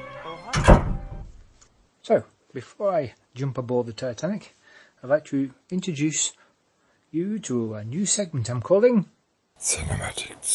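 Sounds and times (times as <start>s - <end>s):
door shutting with a solid thunk: 0.0s - 1.4s
speech: 2.1s - 6.4s, 7.1s - 10.5s.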